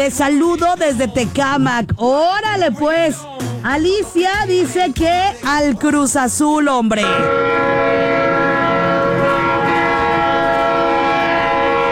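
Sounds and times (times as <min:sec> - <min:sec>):
speech: 0:00.0 - 0:08.1
train horn blaring along a line by Las Américas: 0:07.0 - 0:11.8.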